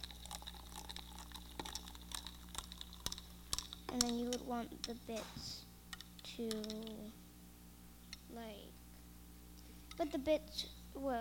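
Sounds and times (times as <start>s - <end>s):
hot water poured onto coconut powder: 0.0s - 3.8s
speech: 3.9s - 7.2s, 8.3s - 8.8s, 10.0s - 11.1s.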